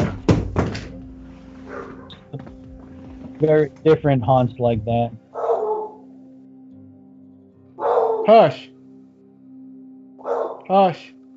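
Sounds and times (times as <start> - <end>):
low lingering hum: 0.0 - 10.2
single sharp dog bark: 1.6 - 2.2, 5.4 - 6.0, 7.8 - 8.4, 10.2 - 10.7
speech: 3.4 - 5.2, 8.3 - 8.7, 10.7 - 11.2.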